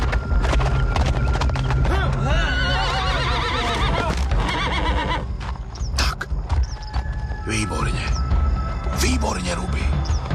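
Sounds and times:
horse hooves clip-clopping: 0.0s - 10.3s
horse neighing: 2.2s - 5.3s.

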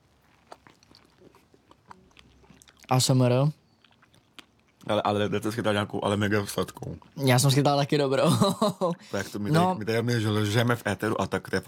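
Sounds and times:
person biting and chewing fresh juicy fruit: 0.0s - 5.0s
speech: 2.9s - 3.6s, 4.9s - 11.6s.

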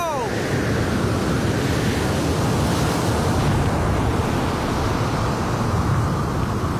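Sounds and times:
steady loud rush of sea water: 0.0s - 6.7s.

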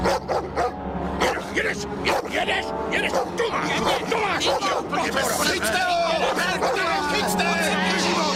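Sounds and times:
dog barking: 0.0s - 1.4s, 2.1s - 2.3s, 3.1s - 4.9s, 6.2s - 6.9s
speech: 1.7s - 8.2s.

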